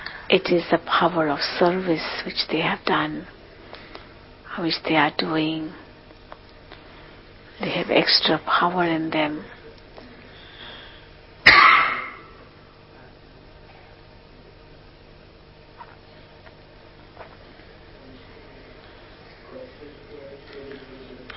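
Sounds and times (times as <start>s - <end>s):
speech: 0.3s - 3.4s, 4.6s - 5.8s, 7.6s - 9.6s
person coughing: 11.5s - 12.4s.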